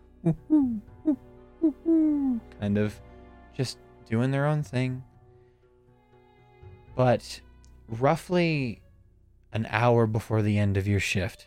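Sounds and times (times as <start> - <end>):
speech: 0.2 - 5.1, 7.0 - 8.8, 9.5 - 11.4
owl hooting from the trees: 0.3 - 2.5.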